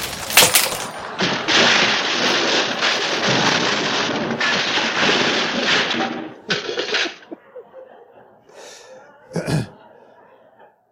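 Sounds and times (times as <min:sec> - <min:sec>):
sharp bang: 0:00.0 - 0:07.3
heavy cross crashing through table with wood cracking: 0:00.0 - 0:07.4
quieter rattling: 0:00.0 - 0:07.4
laughter: 0:06.5 - 0:10.9.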